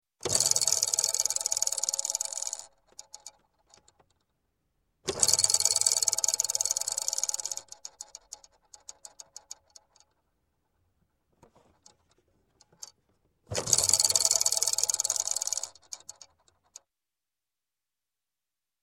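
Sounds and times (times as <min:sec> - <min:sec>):
toy spinning: 0:00.2 - 0:04.0, 0:05.1 - 0:10.1, 0:13.5 - 0:16.8.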